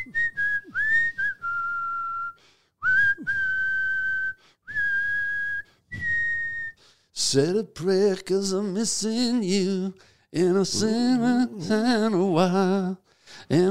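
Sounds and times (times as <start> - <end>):
person whistling a rock song melody: 0.0 - 6.9
speech: 7.2 - 13.6.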